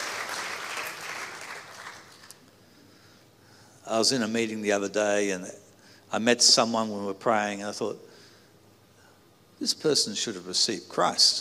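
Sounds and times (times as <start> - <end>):
crowd clapping in sustained applause: 0.0 - 2.5
speech: 3.9 - 8.1, 9.6 - 11.3.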